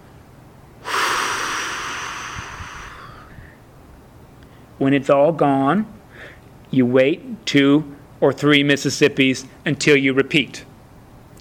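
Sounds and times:
long breathy exhale through the mouth during a slow breathing exercise: 0:00.8 - 0:03.6
speech: 0:04.8 - 0:06.0, 0:06.7 - 0:10.7.

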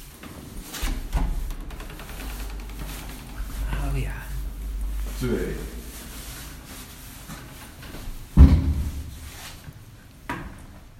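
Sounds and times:
steady low rumble: 0:00.0 - 0:09.9
cupboard door pulled open with scraping slide and soft knock: 0:00.6 - 0:03.7
speech: 0:05.2 - 0:05.8.

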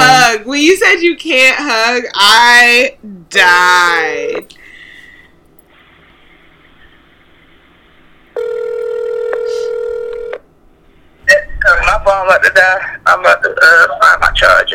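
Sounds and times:
speech: 0:00.4 - 0:04.6, 0:11.6 - 0:14.7
buzzing phone ringback tone: 0:08.4 - 0:10.4.

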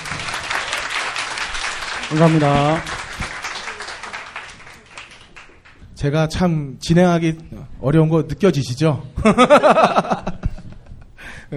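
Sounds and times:
sustained audience applause: 0:00.0 - 0:05.8
speech: 0:02.1 - 0:03.0, 0:06.0 - 0:10.2
laughter: 0:09.2 - 0:11.0.

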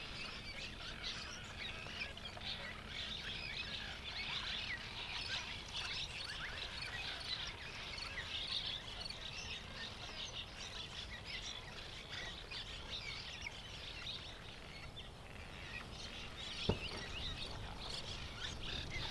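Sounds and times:
cliff swallows twittering at a rookery: 0:00.0 - 0:19.0
low rumbling wind: 0:13.5 - 0:19.0.

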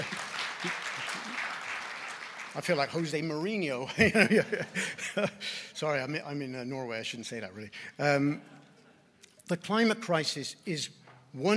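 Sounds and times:
audience clapping steadily: 0:00.0 - 0:03.5
speech: 0:02.6 - 0:08.6, 0:09.5 - 0:11.5
laughter: 0:03.8 - 0:05.5.

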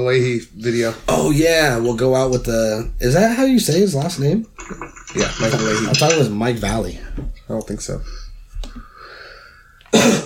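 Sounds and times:
speech: 0:00.0 - 0:08.9, 0:09.9 - 0:10.2
wheezy whistling breath: 0:08.7 - 0:09.9
person coughing: 0:09.9 - 0:10.2.

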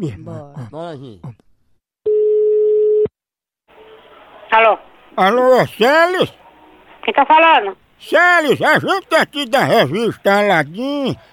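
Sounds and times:
speech: 0:00.0 - 0:01.5, 0:04.5 - 0:06.4, 0:07.1 - 0:11.3
telephone ringback tone while placing a call: 0:02.1 - 0:03.1.

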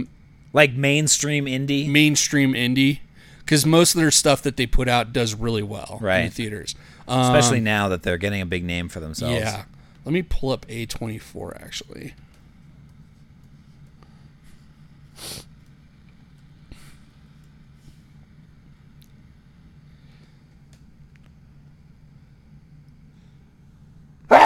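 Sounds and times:
speech: 0:00.0 - 0:12.3, 0:15.2 - 0:15.5
steady low hum: 0:00.0 - 0:24.4
person sneezing: 0:15.2 - 0:15.5.

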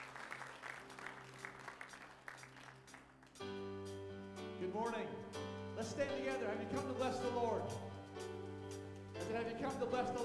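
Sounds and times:
audience applauding: 0:00.0 - 0:03.4
sustained keyboard chords: 0:03.4 - 0:10.2
speech: 0:04.6 - 0:07.9, 0:09.3 - 0:10.2.

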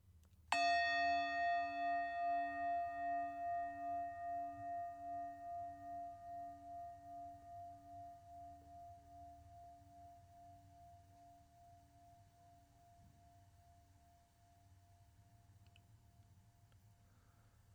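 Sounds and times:
meditation bell ringing: 0:00.5 - 0:13.8.

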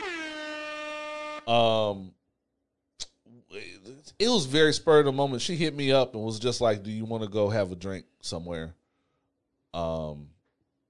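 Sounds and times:
air horn sound effect blasts: 0:00.0 - 0:01.9
speech: 0:01.5 - 0:02.2, 0:03.5 - 0:08.8, 0:09.7 - 0:10.3.

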